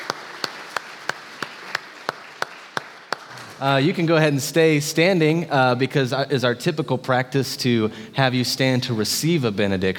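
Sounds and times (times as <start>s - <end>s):
audience clapping in rhythm: 0.0s - 4.3s
speech: 3.6s - 9.9s.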